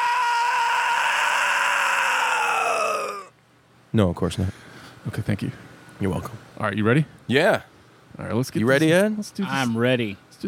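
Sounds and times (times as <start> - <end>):
person screaming loudly: 0.0 - 3.3
speech: 3.9 - 10.4.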